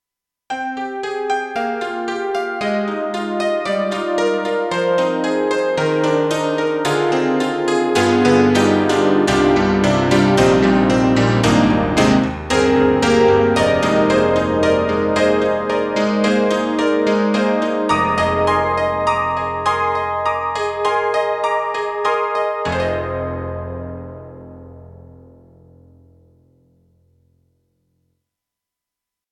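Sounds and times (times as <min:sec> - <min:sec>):
Roland SC-8850 honky tonk piano: 0:00.5 - 0:27.1.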